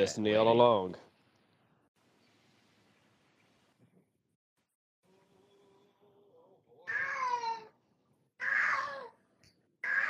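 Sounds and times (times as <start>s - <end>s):
speech: 0.0s - 1.1s
cat meowing loudly: 6.9s - 7.7s, 8.4s - 9.1s, 9.8s - 10.0s.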